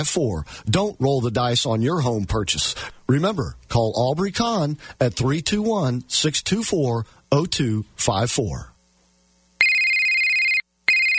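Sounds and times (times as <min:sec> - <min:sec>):
speech: 0:00.0 - 0:08.7
telephone ringing with a loud electronic ringtone: 0:09.6 - 0:11.1.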